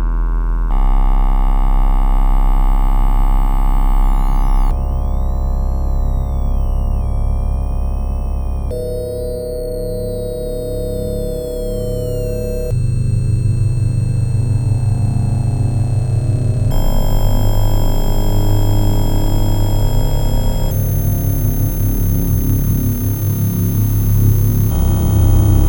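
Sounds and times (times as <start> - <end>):
Sequential Pro 3 synthesizer: 0.1 - 25.6.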